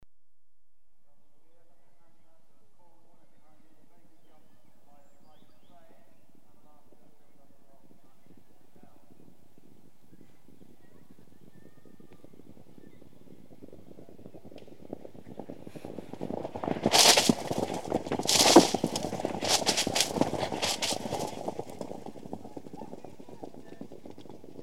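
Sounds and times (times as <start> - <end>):
point-to-point racing horses passing over a jump: 6.3 - 24.6.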